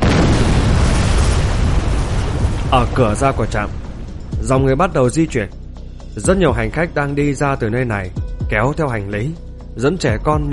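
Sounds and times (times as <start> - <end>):
large explosion blast: 0.0 - 4.9
speech: 2.7 - 3.8, 4.4 - 5.6, 6.2 - 10.5.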